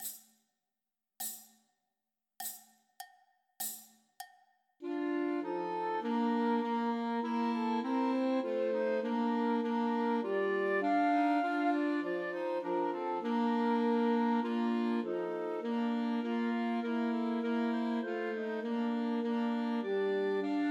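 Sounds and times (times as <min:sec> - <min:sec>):
Christmas carol played by flute, clarinet and alto saxophone trio: 0:04.8 - 0:20.6.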